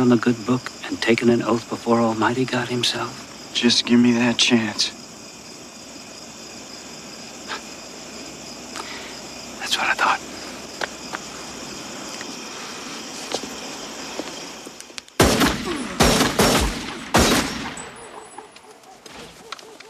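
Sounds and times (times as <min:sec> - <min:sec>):
speech: 0:00.0 - 0:05.0
low noise: 0:00.0 - 0:19.8
loud gunshots with echo: 0:15.2 - 0:18.0.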